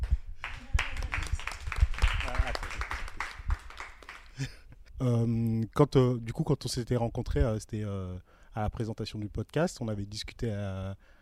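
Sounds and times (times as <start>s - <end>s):
small group clapping: 0.0s - 4.5s
speech: 4.4s - 11.2s.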